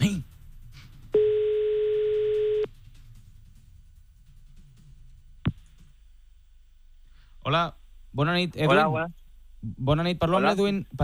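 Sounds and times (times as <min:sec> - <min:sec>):
telephone call tone while waiting for an answer: 0:01.2 - 0:02.7
speech: 0:07.5 - 0:11.0.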